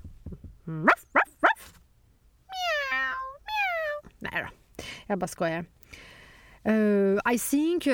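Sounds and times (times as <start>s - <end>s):
speech: 0.7s - 1.1s, 5.1s - 7.9s
person imitating English dog yelps: 0.7s - 1.7s, 2.5s - 4.1s
person imitating French cat meows: 2.5s - 4.1s.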